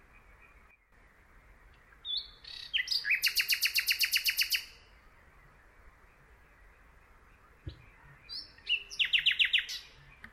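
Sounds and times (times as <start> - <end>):
Common nightingale singing with whistles, clicks and rattling trills: 0.0 - 10.3.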